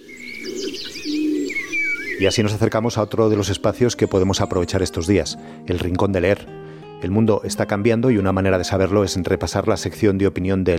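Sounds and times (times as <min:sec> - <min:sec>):
doves cooing: 0:00.0 - 0:04.6
birds chirping and warbling in a forest on La Gomera, Canary Islands: 0:00.0 - 0:05.6
speech: 0:02.2 - 0:10.7.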